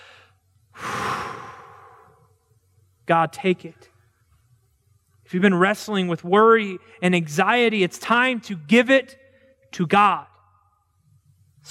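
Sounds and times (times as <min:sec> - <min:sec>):
deep breath during a guided prayer: 0:00.0 - 0:02.4
speech: 0:03.1 - 0:03.9, 0:05.3 - 0:10.3.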